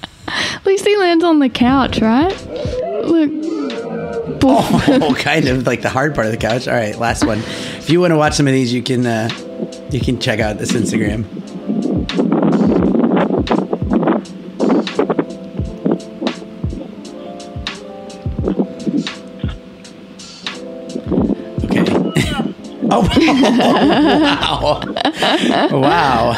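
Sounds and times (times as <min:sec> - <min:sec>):
speech: 0:00.6 - 0:03.5, 0:04.3 - 0:11.4, 0:23.2 - 0:26.3
strong wind buffeting a video recording microphone: 0:01.6 - 0:05.9, 0:09.2 - 0:17.1, 0:18.3 - 0:19.6, 0:20.9 - 0:23.6
laughter: 0:04.4 - 0:07.7, 0:21.8 - 0:26.3.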